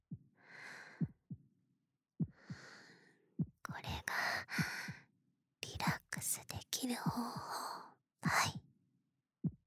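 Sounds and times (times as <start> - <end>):
soft low heartbeat thumping: 2.2 - 2.7, 3.4 - 5.0, 5.8 - 6.3, 7.0 - 7.6, 9.4 - 9.6
speech: 6.8 - 7.6.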